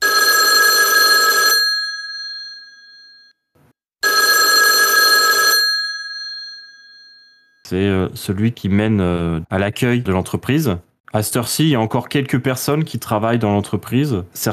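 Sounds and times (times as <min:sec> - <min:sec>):
office telephone bell-like ringing: 0:00.0 - 0:03.4, 0:04.0 - 0:07.6
speech: 0:07.7 - 0:14.5.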